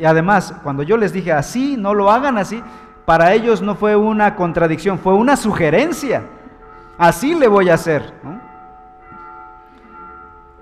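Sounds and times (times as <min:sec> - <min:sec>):
speech: 0:00.0 - 0:06.4, 0:07.0 - 0:08.2
church bells ringing in the morning: 0:00.0 - 0:10.6.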